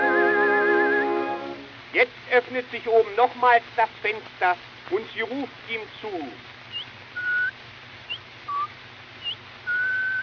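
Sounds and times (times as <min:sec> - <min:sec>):
faint hiss: 0:00.0 - 0:10.2
person whistling a tune imitating little songbirds: 0:00.1 - 0:01.3, 0:06.8 - 0:07.5, 0:08.5 - 0:10.2
speech: 0:02.0 - 0:06.5.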